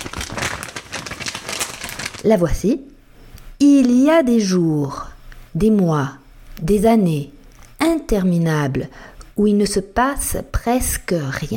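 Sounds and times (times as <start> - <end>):
small paper slips rustling and crinkling in a Mason-type jar: 0.0 - 2.3
speech: 2.2 - 2.9, 3.6 - 11.5.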